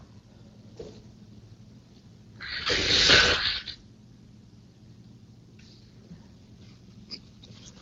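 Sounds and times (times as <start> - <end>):
person blowing nose in a loud breathy honk: 2.4 - 3.7.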